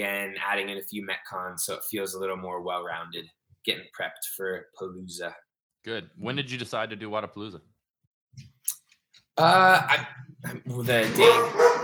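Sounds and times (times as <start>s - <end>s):
speech: 0.0s - 7.7s, 9.4s - 11.8s
dog barking at a pool maintenance worker: 11.2s - 11.8s.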